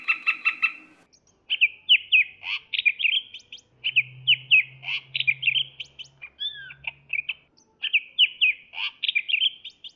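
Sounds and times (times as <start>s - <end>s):
Medan type greater green leafbird singing sweet slurred whistles and chirps: 0.0s - 9.9s.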